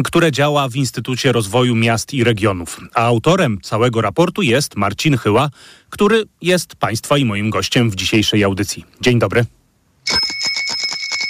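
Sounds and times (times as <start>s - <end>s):
speech: 0.0s - 10.4s
bicycle bell ringing in a quick metallic trill: 10.0s - 11.2s.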